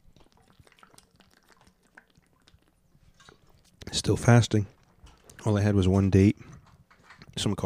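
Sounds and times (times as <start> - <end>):
wet slurping: 0.0 - 3.9
sipping water: 0.0 - 7.6
speech: 3.9 - 4.8, 5.4 - 6.5, 7.4 - 7.6.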